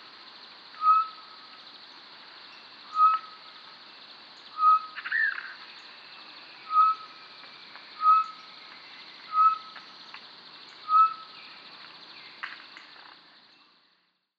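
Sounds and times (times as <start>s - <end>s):
background bird sounds: 0.0s - 14.3s
short-tailed batis Batis mixta calling with a whistled note: 0.8s - 1.3s, 2.9s - 3.4s, 4.5s - 5.6s, 6.6s - 7.1s, 8.0s - 8.4s, 9.3s - 9.8s, 10.8s - 11.3s.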